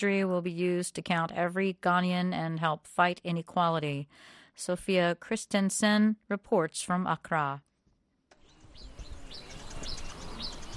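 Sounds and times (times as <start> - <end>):
speech: 0.0 - 7.7
high bird chirps and calls at forest mining site: 8.4 - 10.7.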